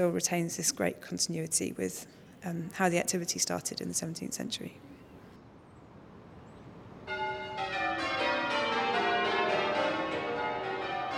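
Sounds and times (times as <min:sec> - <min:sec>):
speech: 0:00.0 - 0:05.0
church bells ringing: 0:07.1 - 0:11.1.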